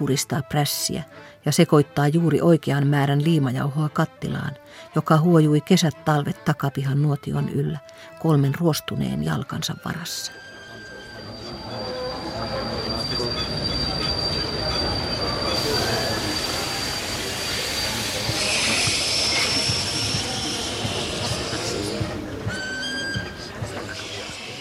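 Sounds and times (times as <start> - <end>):
speech: 0.0 - 10.5
train wheels squealing as a train pulls into a railway station in Prague: 10.3 - 24.5.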